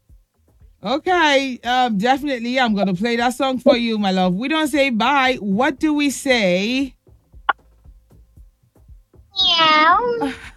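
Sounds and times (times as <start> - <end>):
speech: 0.8 - 7.0, 9.9 - 10.5
person imitating a cat's meow: 9.4 - 10.4.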